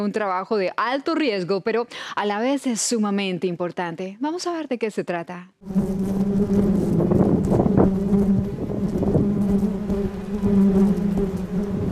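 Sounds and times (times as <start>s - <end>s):
speech: 0.0s - 6.7s
drone of many swarming bees buzzing in Tijuana, Baja California: 5.6s - 11.8s.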